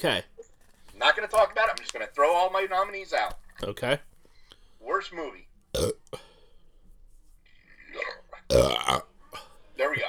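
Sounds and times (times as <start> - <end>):
speech: 0.0 - 0.3, 1.1 - 4.1, 4.8 - 6.2, 8.5 - 9.1, 9.8 - 10.0
loud throaty burp: 5.8 - 6.2, 8.0 - 9.5.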